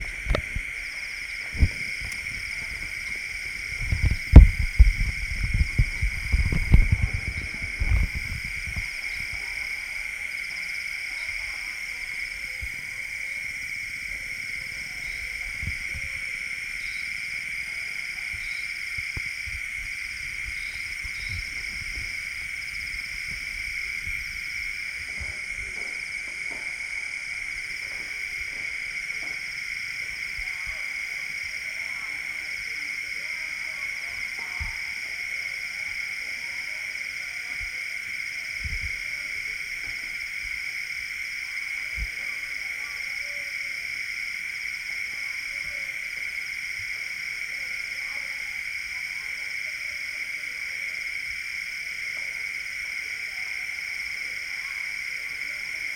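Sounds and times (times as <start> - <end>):
frogs croaking at night on a street in South India: 0.0 - 55.9.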